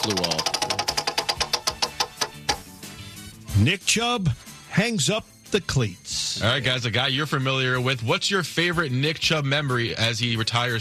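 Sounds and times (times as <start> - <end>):
speech: 0.0 - 0.5, 3.6 - 10.7
prize wheel of topics spinning and ticking: 0.0 - 2.6.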